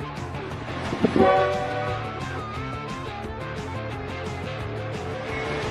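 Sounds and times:
steam train chugging and clattering along the track: 0.2 - 3.8, 4.6 - 5.6
steam train whistle blast: 0.9 - 2.7.

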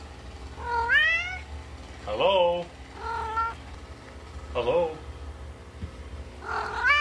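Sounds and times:
quiet hum: 0.0 - 6.9
cat meowing in reply to greetings: 0.6 - 1.5, 3.0 - 3.6, 6.4 - 6.9
speech: 2.2 - 2.8, 4.6 - 5.0.

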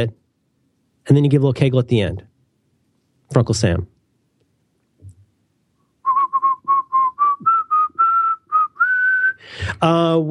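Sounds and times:
speech: 0.0 - 0.2, 1.0 - 2.3, 3.3 - 3.9, 9.6 - 10.2
person whistling: 6.0 - 9.5.

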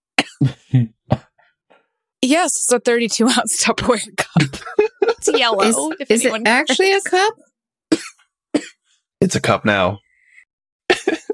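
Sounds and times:
harsh coughs: 0.2 - 1.3, 4.3 - 5.9, 7.9 - 9.4, 10.9 - 11.3
speech: 0.4 - 1.2, 2.3 - 7.5, 9.2 - 10.0
laughter: 4.3 - 6.9, 10.9 - 11.3.

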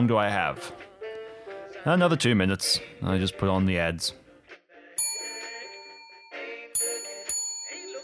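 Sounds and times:
speech: 0.0 - 0.9, 1.8 - 4.2
bright bell dings, possibly front doorbell: 5.0 - 8.0.

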